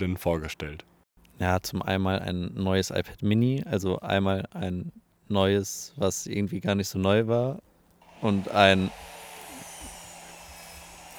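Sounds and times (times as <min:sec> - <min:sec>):
speech: 0:00.0 - 0:09.2
chainsaw running: 0:08.0 - 0:11.1.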